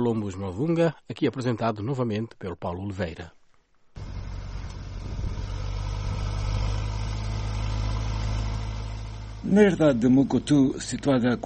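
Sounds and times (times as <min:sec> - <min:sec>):
speech: 0:00.0 - 0:03.4, 0:09.4 - 0:11.4
tractor engine running while preparing land: 0:04.0 - 0:11.4.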